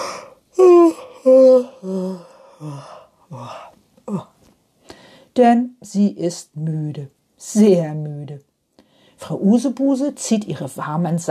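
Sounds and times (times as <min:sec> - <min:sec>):
person yawning: 0:00.0 - 0:04.4
speech: 0:01.2 - 0:04.3, 0:05.4 - 0:08.5, 0:09.2 - 0:11.2.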